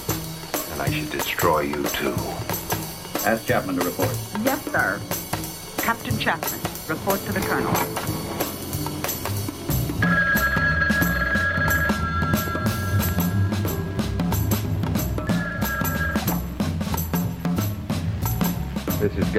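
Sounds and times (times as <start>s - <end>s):
music: 0.0s - 19.3s
speech: 0.8s - 2.6s, 3.2s - 5.2s, 5.8s - 8.2s
telephone ringing with steady electronic tone: 10.0s - 13.6s, 15.2s - 16.4s.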